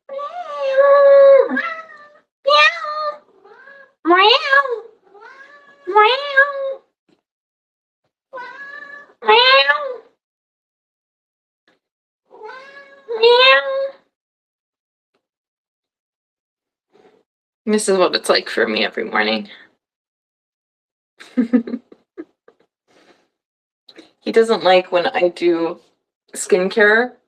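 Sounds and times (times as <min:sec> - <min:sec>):
house cat meowing: 0:00.1 - 0:06.8, 0:08.3 - 0:10.1, 0:12.3 - 0:14.0
speech: 0:17.7 - 0:19.6, 0:21.4 - 0:21.9, 0:24.2 - 0:27.2.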